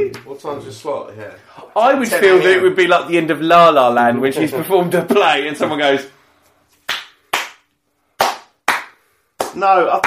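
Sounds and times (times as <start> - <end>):
speech: 0.0 - 6.2, 9.6 - 10.0
loud sharp slow hand claps: 6.8 - 10.0.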